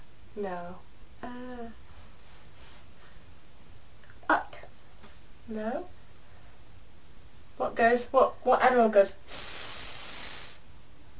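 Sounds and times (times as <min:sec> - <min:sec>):
speech: 0:00.4 - 0:01.8, 0:05.5 - 0:06.0, 0:07.6 - 0:09.4
person imitating a snake with a loud steady hiss: 0:09.3 - 0:10.6.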